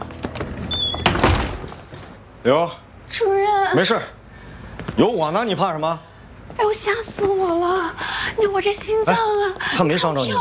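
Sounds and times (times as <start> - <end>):
door being shut with a dull thunk: 0.7 - 2.1
speech: 2.4 - 4.2, 5.0 - 10.3.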